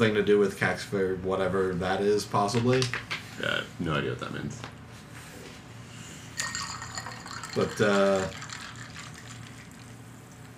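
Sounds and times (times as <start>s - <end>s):
speech: 0.0s - 4.8s, 7.6s - 8.4s
soda being opened with a fizzing burst: 6.4s - 10.5s
soda being poured: 6.4s - 10.5s.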